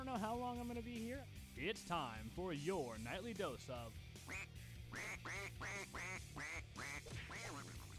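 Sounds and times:
speech: 0:00.1 - 0:07.8
duck quacking: 0:04.2 - 0:07.9.

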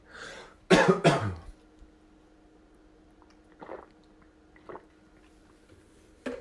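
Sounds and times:
person sipping water: 0:03.2 - 0:05.6.

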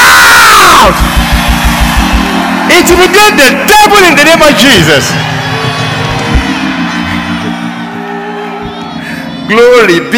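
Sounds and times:
audience shouting and whooping in praise: 0:00.0 - 0:10.1
speech: 0:00.8 - 0:01.3, 0:02.8 - 0:05.3, 0:09.5 - 0:10.1.

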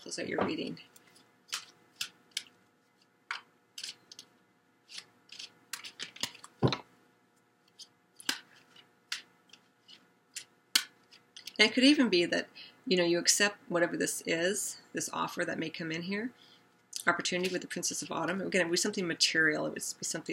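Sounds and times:
speech: 0:00.0 - 0:01.0, 0:11.6 - 0:16.4, 0:17.0 - 0:20.3
tarot cards snapping and rustling as they are drawn from a deck: 0:01.5 - 0:02.6, 0:03.3 - 0:04.3, 0:04.9 - 0:06.8, 0:07.7 - 0:11.6.

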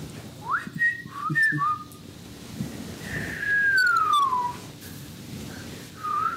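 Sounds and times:
person whistling a patterned signal: 0:00.4 - 0:01.9, 0:03.1 - 0:04.6, 0:06.0 - 0:06.3
faint outdoor wind noise: 0:02.1 - 0:06.3.

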